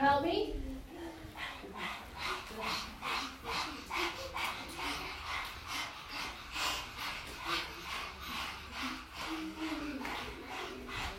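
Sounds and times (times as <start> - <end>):
several people panting rapidly in unison imitating a dog: 0.9 - 11.1.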